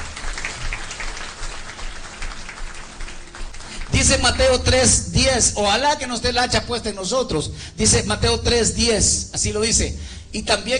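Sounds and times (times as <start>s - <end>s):
audience applauding: 0.0s - 4.5s
speech: 3.9s - 10.7s.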